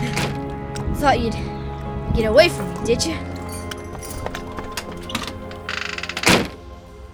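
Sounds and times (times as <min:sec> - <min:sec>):
speech: 0:01.0 - 0:03.3
heavy warehouse door on the New York waterfront rattling open: 0:02.2 - 0:06.6
soft knocks and creaks: 0:02.2 - 0:06.6.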